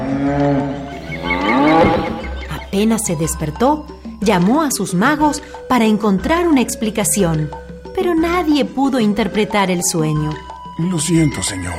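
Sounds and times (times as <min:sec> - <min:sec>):
cows mooing on a riverbank: 0:00.0 - 0:02.6
speech: 0:02.8 - 0:11.7.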